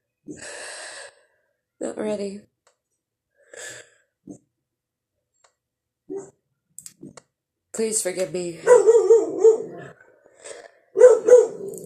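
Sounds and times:
speech: 1.8s - 2.5s, 7.8s - 9.0s
dogs barking: 6.1s - 6.4s, 8.6s - 10.0s, 10.9s - 11.8s.

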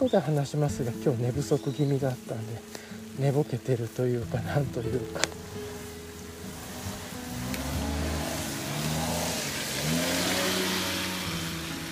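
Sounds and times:
speech: 0.0s - 5.6s
broadband road or rain noise: 3.8s - 11.8s
car engine revving and accelerating: 6.4s - 11.8s.

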